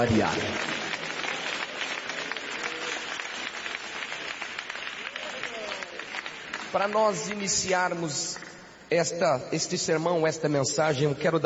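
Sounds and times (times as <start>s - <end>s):
speech: 0.0s - 0.7s, 6.7s - 11.4s
church audience applauding: 0.0s - 7.8s.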